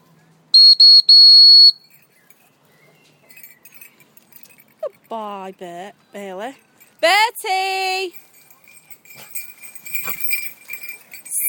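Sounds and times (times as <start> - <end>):
shrill whistle being blown: 0.6 - 1.9
speech: 1.2 - 2.0, 4.8 - 8.2.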